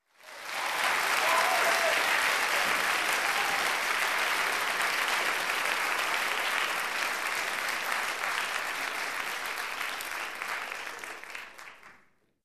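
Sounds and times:
talk show audience applause: 0.0s - 12.1s.

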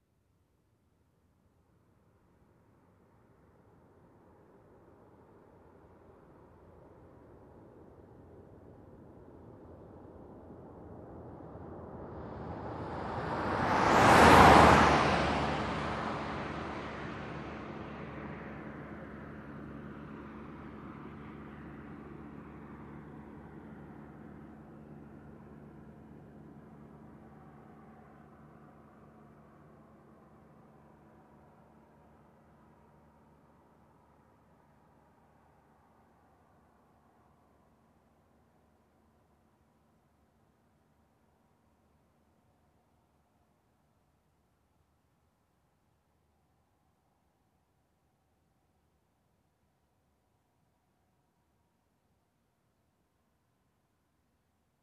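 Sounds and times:
car driving by fast: 11.8s - 21.9s.

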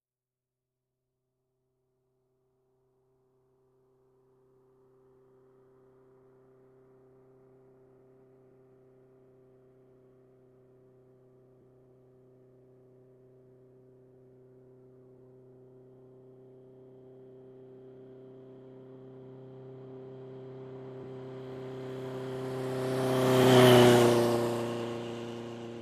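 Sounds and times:
motorcycle passing by: 17.5s - 25.8s.

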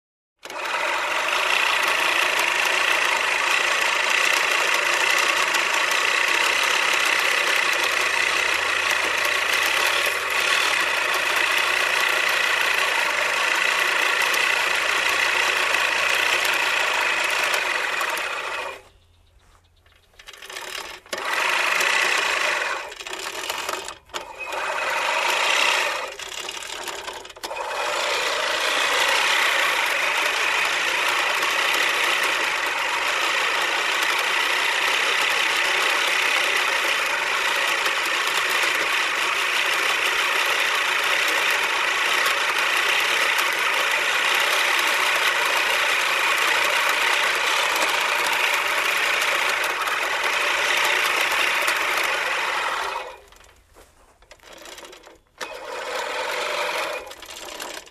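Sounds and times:
hedge cutting: 0.4s - 19.0s, 20.0s - 57.8s.

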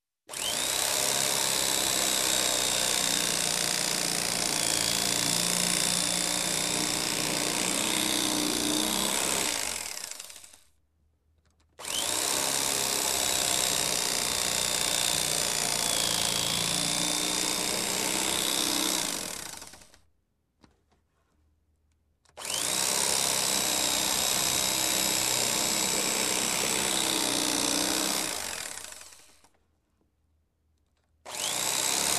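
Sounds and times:
electric hand mixer turning on and off: 0.3s - 10.6s, 11.8s - 20.0s, 22.4s - 29.4s, 31.3s - 32.1s.

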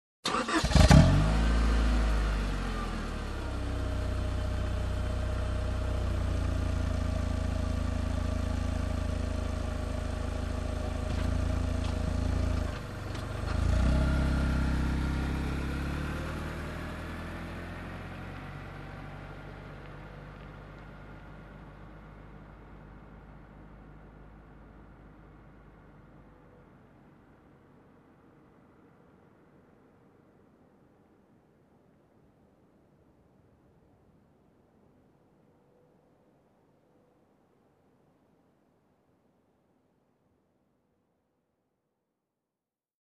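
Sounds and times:
car engine ignition: 0.2s - 26.6s.

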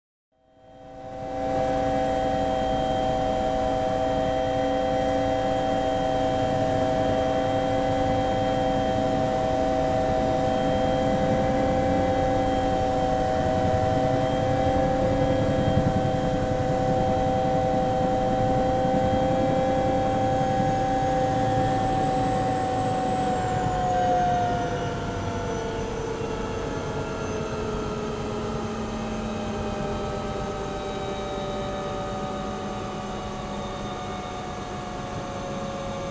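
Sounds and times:
helicopter engine shutdown from cockpit: 0.7s - 36.0s.

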